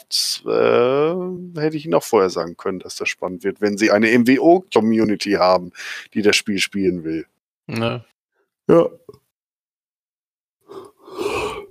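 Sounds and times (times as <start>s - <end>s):
speech: 0.0s - 0.9s, 1.5s - 9.2s
person yawning: 10.7s - 11.7s.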